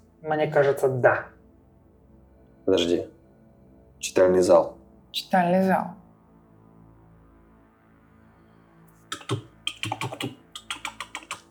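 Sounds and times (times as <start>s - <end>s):
speech: 0.2s - 1.4s, 2.7s - 3.2s, 4.0s - 6.0s
rapid typing on a computer keyboard: 9.2s - 11.4s.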